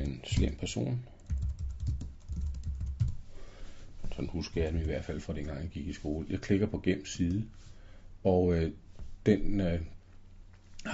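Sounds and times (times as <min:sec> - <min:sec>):
typing on a computer keyboard while writing a text: 0:00.0 - 0:00.6, 0:01.2 - 0:03.2
speech: 0:00.2 - 0:01.1, 0:04.2 - 0:10.0.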